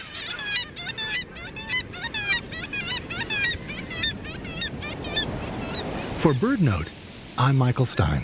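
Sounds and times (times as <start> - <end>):
black-legged kittiwake colony calling: 0.0 - 6.2
low rumble of wind or surf: 0.0 - 8.2
speech: 6.2 - 8.2.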